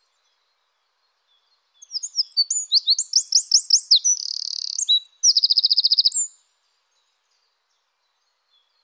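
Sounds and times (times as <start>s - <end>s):
Eurasian wren singing buzzing and rattling trills: 1.8s - 6.4s.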